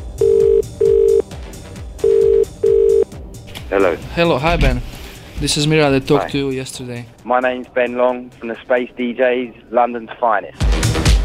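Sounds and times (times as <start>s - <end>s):
telephone line ringing tone: 0.1s - 1.3s, 2.0s - 3.1s
faint music: 2.0s - 10.6s
speech: 3.7s - 10.6s.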